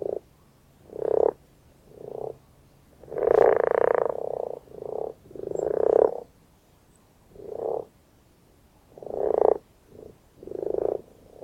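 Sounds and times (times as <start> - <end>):
Common frog giving low rasping grunts and purring croaks: 0.8 - 2.4, 3.0 - 6.3, 7.3 - 7.9, 8.9 - 11.4.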